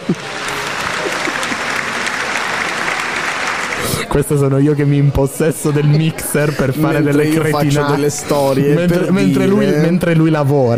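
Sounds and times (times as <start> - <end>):
laughter: 0.0 - 4.1, 5.8 - 10.0
audience applause in a theatre: 0.0 - 4.5
speech: 0.1 - 0.4, 4.1 - 10.7.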